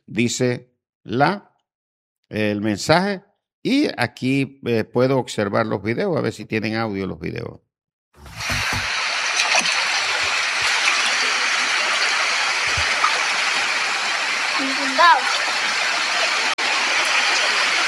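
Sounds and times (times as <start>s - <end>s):
speech: 0.1s - 1.5s, 2.3s - 7.6s
floodwater rushing through a built-up area: 8.2s - 17.8s.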